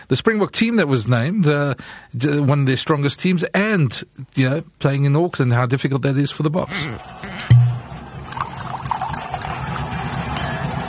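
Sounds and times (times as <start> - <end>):
speech: 0.1 - 7.3
wine being poured into a glass: 8.2 - 10.0
brief clink: 10.4 - 10.7.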